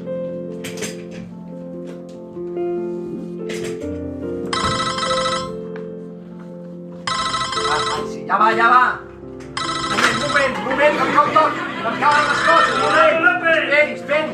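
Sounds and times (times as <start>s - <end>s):
continuous musical bed: 0.0s - 14.3s
telephone ringing with an incoming call: 4.5s - 5.7s, 7.0s - 8.3s, 9.6s - 10.7s, 12.0s - 13.2s
speech: 8.3s - 9.0s, 10.4s - 14.3s
laughter: 10.1s - 13.5s.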